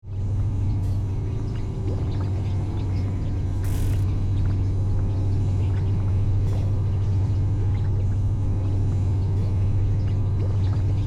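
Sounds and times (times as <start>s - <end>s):
spaceship interior machine room ambience: 0.1s - 11.0s.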